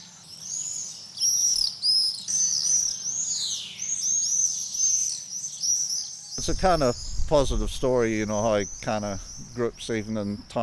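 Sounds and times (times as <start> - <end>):
flock of nesting swifts screaming: 0.0 - 10.6
faint low rumble of noise: 6.4 - 10.6
speech: 6.4 - 10.6.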